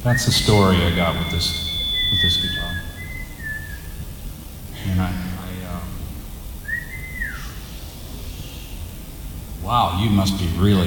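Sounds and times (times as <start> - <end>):
speech: 0.0 - 2.8, 9.7 - 10.8
person whistling: 0.0 - 4.1
steady noisy background: 0.0 - 10.8.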